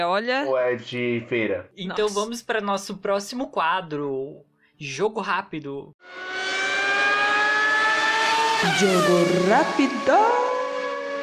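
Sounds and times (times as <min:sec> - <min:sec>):
speech: 0:00.0 - 0:06.5, 0:08.6 - 0:10.4
car engine roaring as the car passes by very fast: 0:06.0 - 0:11.2.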